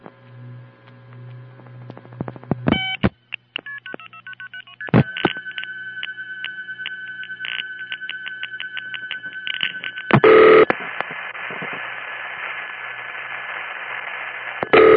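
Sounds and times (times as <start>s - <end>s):
vintage telephone sounds: 2.7s - 10.8s, 14.6s - 14.9s.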